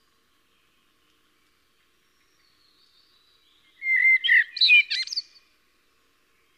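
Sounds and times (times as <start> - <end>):
common blackbird singing fluty and scratchy twittering notes: 2.0 - 5.5.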